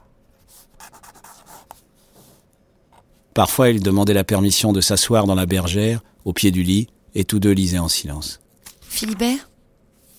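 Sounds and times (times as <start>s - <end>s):
pen scratching across paper while sketching a person: 0.4s - 2.3s
speech: 3.4s - 9.5s.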